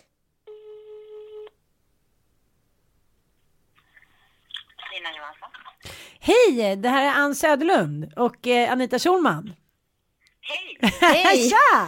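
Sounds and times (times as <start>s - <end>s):
buzzy harmonic ringing tone of an outgoing telephone call: 0.5s - 1.5s
speech: 5.0s - 9.6s, 10.5s - 11.8s.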